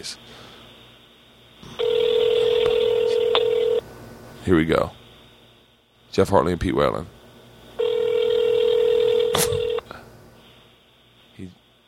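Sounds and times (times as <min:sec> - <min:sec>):
speech: 0:00.0 - 0:00.5, 0:04.5 - 0:05.0, 0:06.1 - 0:07.2, 0:11.4 - 0:11.6
ringback tone of an outgoing phone call over a phone line: 0:01.6 - 0:03.8, 0:07.8 - 0:09.8.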